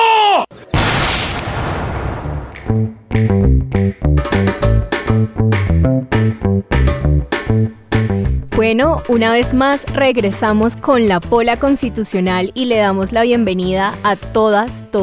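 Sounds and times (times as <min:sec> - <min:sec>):
firing squad volley of gunshots: 0:00.8 - 0:02.6
rhythmic music with steady punchy beats: 0:02.6 - 0:08.5
speech: 0:08.7 - 0:15.0.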